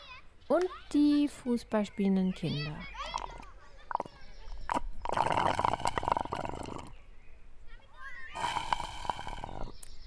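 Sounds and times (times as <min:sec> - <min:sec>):
speech: 0:00.5 - 0:03.2
slurping empty iced tea through a straw: 0:03.1 - 0:07.0, 0:08.4 - 0:09.7.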